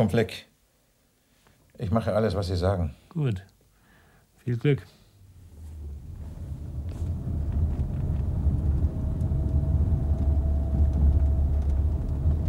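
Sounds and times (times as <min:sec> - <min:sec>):
speech: 0:00.0 - 0:00.5, 0:01.8 - 0:03.5, 0:04.4 - 0:05.0
car engine rumbling as the car drives slowly toward a house in the rain: 0:05.2 - 0:12.4.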